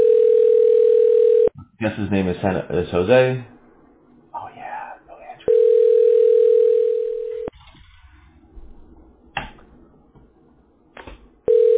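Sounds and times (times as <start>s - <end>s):
telephone dial tone while calling: 0.0s - 1.5s, 5.5s - 7.5s, 11.5s - 11.7s
speech: 1.8s - 3.5s.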